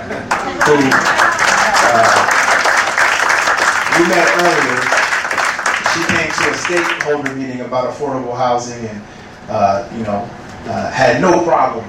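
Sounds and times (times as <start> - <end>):
audience applause: 0.0 - 7.4
speech: 0.1 - 2.4, 4.0 - 5.0, 6.0 - 11.8.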